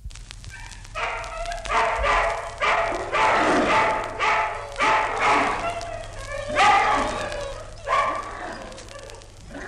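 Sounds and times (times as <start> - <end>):
dogs yipping and barking: 0.5 - 9.6
hungry dogs snarling and growling while gnawing on fresh meat at night: 3.0 - 9.6.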